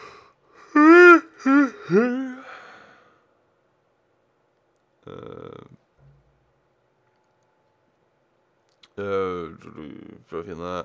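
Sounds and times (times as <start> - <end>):
big loud yawn: 0.0 - 3.2
speech: 1.9 - 2.2, 9.0 - 10.8.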